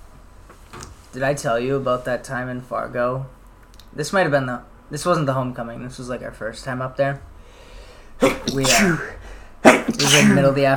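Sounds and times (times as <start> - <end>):
speech: 1.1 - 7.3, 8.2 - 9.2, 9.9 - 10.7
person sneezing: 8.2 - 10.6.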